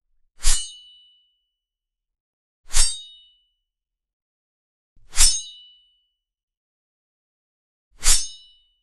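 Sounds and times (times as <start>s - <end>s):
long sword swing whoosh: 0.4s - 0.7s, 2.7s - 3.0s, 5.0s - 5.4s, 8.0s - 8.4s.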